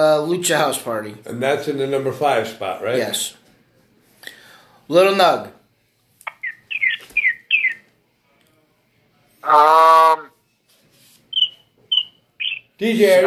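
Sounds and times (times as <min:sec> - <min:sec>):
speech: 0:00.0 - 0:03.4, 0:04.9 - 0:05.6, 0:09.4 - 0:10.3, 0:12.8 - 0:13.2
birds chirping outdoors: 0:06.2 - 0:07.9, 0:11.3 - 0:13.2
harsh squawk-like bird call: 0:06.3 - 0:07.8, 0:09.4 - 0:10.3, 0:11.3 - 0:13.2.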